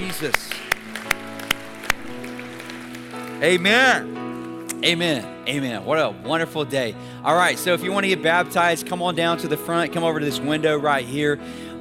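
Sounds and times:
church congregation hand claps: 0.0s - 4.8s
speech: 0.1s - 0.7s, 3.4s - 4.2s, 4.8s - 11.7s.

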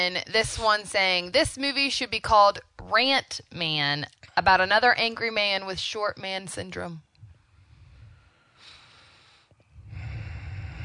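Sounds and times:
speech: 0.0s - 7.1s
heavy breathing into a microphone: 7.4s - 10.8s
short snort-like catch in breathing: 9.8s - 10.8s.

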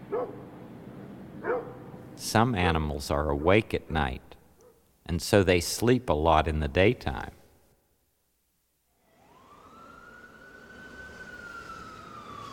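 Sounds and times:
traffic or engine rumble: 0.0s - 7.4s, 9.2s - 12.5s
dog barking: 0.1s - 0.4s, 1.4s - 1.8s
speech: 2.2s - 4.3s, 5.1s - 7.4s
fire engine siren: 8.9s - 12.5s.

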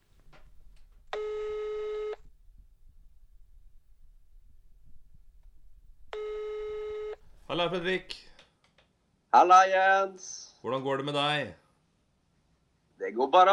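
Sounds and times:
faint low hum: 0.0s - 8.4s
buzzing phone line ringback tone: 1.1s - 2.2s, 6.1s - 7.2s
speech: 7.5s - 8.3s, 9.3s - 11.6s, 13.0s - 13.5s.

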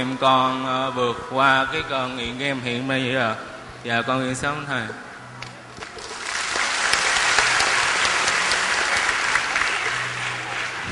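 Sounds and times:
speech: 0.0s - 5.1s
crowd applauding at a camp gathering: 5.8s - 10.8s.

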